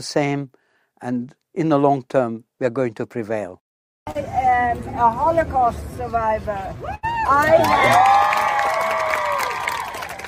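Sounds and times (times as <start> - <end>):
speech: 0.0 - 8.3
raised voices whooping over applause: 6.8 - 10.2
large audience clapping: 7.4 - 10.2.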